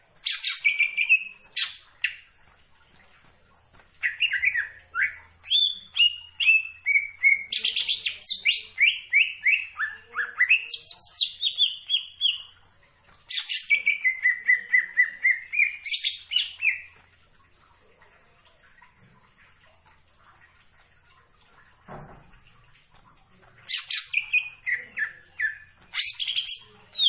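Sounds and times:
leafbird singing varied whistles and chattering notes: 0.2 - 2.2, 4.0 - 12.5, 13.3 - 16.9, 23.7 - 27.0.

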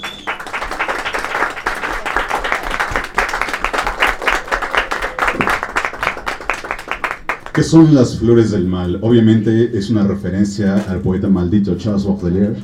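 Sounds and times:
audience applause for a poetry ensemble's stage performance: 0.0 - 7.7
speech: 7.6 - 12.6.

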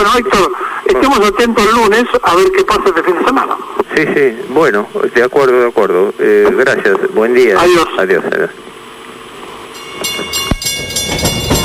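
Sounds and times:
speech: 0.1 - 8.7
train wheels clacking on railway tracks: 9.8 - 11.6
steady rolling rumble of a train on railway tracks: 10.0 - 11.6.

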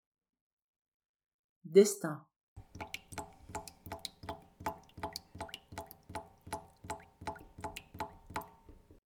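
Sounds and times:
speech: 1.7 - 2.9
water dripping from a badly closed tap into a stainless steel sink: 2.6 - 9.0.

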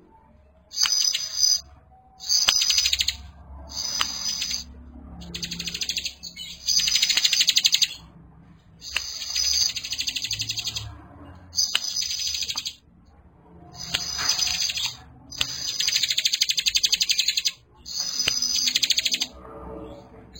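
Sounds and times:
bar-winged prinia singing in high-pitched rattling bursts: 0.6 - 8.2, 8.8 - 12.9, 13.6 - 20.3
sharp clicks: 0.7 - 1.6, 2.2 - 8.0, 8.8 - 11.0, 11.6 - 12.8, 13.8 - 19.4.

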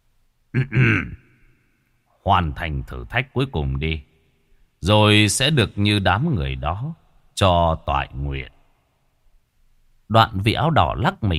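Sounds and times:
light cough: 0.6 - 1.2
speech: 0.6 - 1.2, 2.2 - 4.1, 4.8 - 8.6, 10.1 - 11.3.

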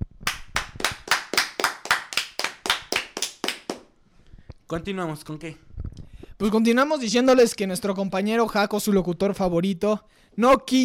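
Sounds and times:
applause for the runner-up football team: 0.0 - 3.9
speech: 4.7 - 5.7, 6.4 - 10.8.

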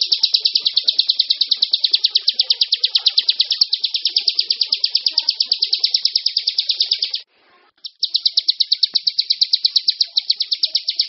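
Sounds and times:
bar-winged prinia song: 0.0 - 11.0.

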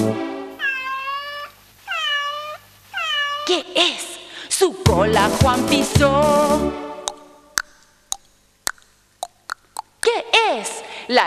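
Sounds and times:
cat meowing: 0.6 - 3.7
speech: 3.5 - 4.0, 4.6 - 6.8, 10.6 - 11.2.

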